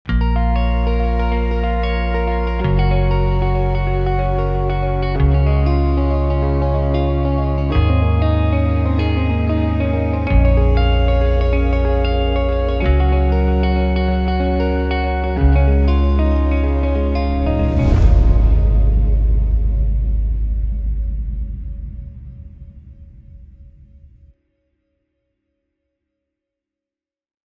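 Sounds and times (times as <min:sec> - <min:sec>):
upbeat positive melodic guitar logo music: 0:00.1 - 0:21.0
deep hit: 0:17.2 - 0:24.3.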